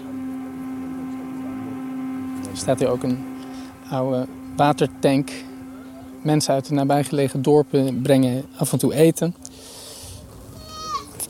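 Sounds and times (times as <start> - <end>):
speech: 2.6 - 3.3, 3.9 - 5.5, 6.2 - 9.4
goat bleating: 10.5 - 11.2.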